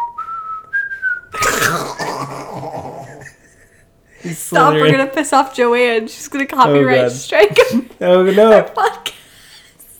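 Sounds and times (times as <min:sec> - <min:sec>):
person whistling imitating a giant flying snake: 0:00.0 - 0:01.4
speech: 0:04.2 - 0:09.2.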